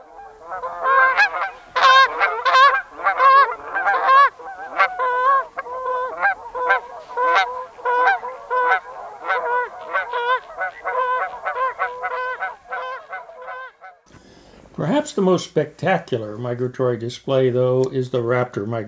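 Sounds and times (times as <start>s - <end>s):
flock of Canada geese honking in flight: 0.0s - 14.0s
speech: 15.2s - 18.8s.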